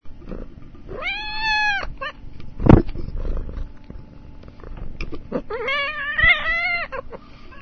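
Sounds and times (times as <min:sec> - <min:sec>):
low background hum: 0:00.0 - 0:07.6
cat meowing: 0:00.9 - 0:02.2, 0:05.4 - 0:07.6.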